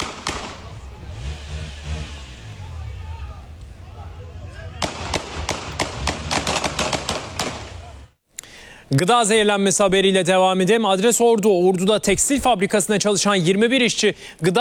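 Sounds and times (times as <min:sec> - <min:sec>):
police gunfire at a fleeing car: 0:00.0 - 0:08.1
car engine and road noise: 0:00.0 - 0:08.2
speech: 0:08.9 - 0:14.6.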